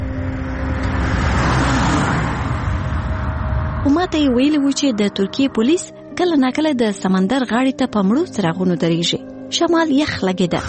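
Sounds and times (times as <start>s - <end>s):
car passing by on a road near a seashore in Turkey: 0.0s - 5.4s
speech: 4.1s - 10.6s.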